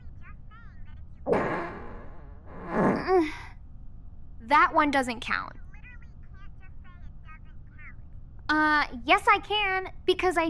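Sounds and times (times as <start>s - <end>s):
raspy sputtering fart sounds: 1.3s - 3.2s
speech: 4.5s - 5.6s, 8.5s - 10.4s.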